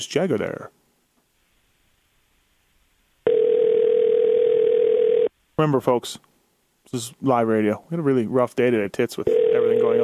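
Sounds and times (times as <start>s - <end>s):
speech: 0.0s - 0.8s, 5.6s - 6.3s, 6.9s - 10.0s
telephone ringback tone on an outgoing call: 3.2s - 5.3s, 9.3s - 10.0s.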